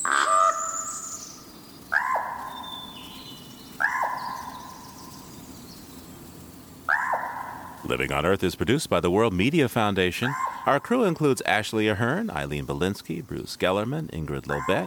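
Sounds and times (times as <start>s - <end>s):
common raven croaking in Oregon's Mount Hood National Forest: 0.0s - 0.9s, 3.8s - 5.0s, 6.9s - 14.8s
faint outdoor background: 0.0s - 14.8s
speech: 7.9s - 14.8s.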